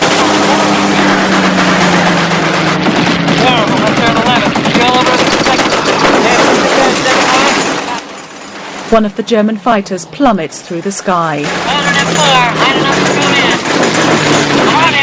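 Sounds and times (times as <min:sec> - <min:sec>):
bomber crew machine-gun fire from turret positions during a fighter attack: 0:00.0 - 0:07.8, 0:11.4 - 0:15.0
droning bomber engines: 0:00.0 - 0:15.0
speech: 0:08.9 - 0:15.0.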